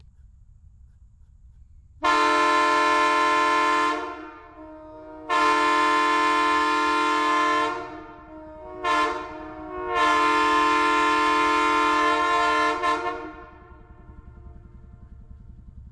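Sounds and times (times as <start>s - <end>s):
Nathan M3H horn: 2.0s - 14.8s.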